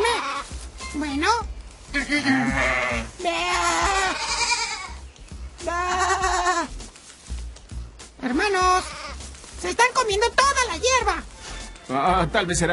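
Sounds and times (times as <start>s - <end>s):
speech: 1.0s - 4.3s, 8.2s - 9.0s, 9.6s - 11.3s, 11.9s - 12.7s
person imitating billy goat bleats: 1.9s - 5.0s, 5.6s - 6.7s, 8.3s - 9.2s.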